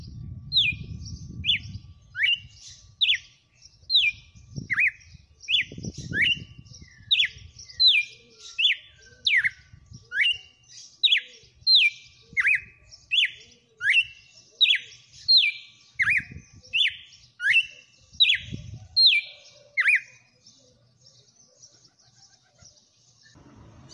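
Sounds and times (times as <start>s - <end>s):
female red-cowled cardinal singing: 0.0s - 23.9s
low background rumble: 23.4s - 23.9s.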